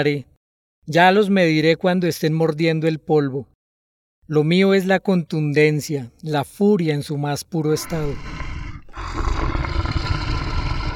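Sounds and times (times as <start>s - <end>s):
speech: 0.0s - 3.5s, 4.3s - 8.4s
tiger roaring: 7.8s - 10.9s.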